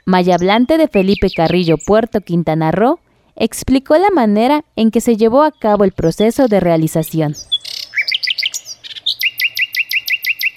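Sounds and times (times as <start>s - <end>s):
speech: 0.1s - 7.5s
bright high bird song from a digital birdsong collection: 0.3s - 1.9s, 7.3s - 10.5s.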